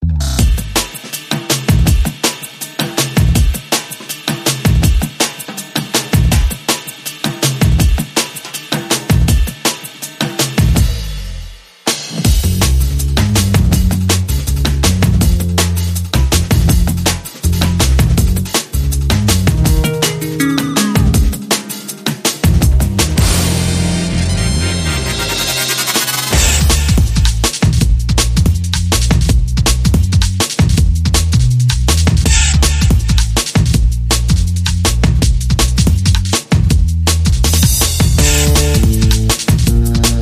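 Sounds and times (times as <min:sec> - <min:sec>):
old bass rhythm: 0:00.0 - 0:00.9, 0:12.4 - 0:40.2
nu drum rhythm: 0:00.4 - 0:40.2.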